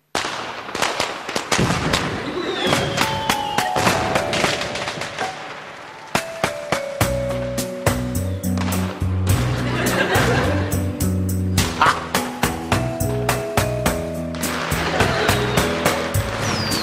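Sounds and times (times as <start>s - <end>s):
whistling fireworks tones rising: 0.0s - 7.2s, 14.3s - 16.8s
fireworks bangs and crackles: 0.0s - 10.3s, 13.4s - 16.8s
deep booming fireworks bursts: 1.5s - 5.3s, 8.0s - 15.2s
laughter: 9.4s - 12.2s, 14.5s - 16.2s.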